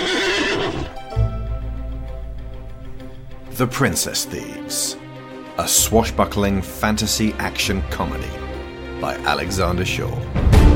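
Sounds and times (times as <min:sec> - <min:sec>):
horse neighing: 0:00.0 - 0:01.0
speech: 0:03.6 - 0:10.6.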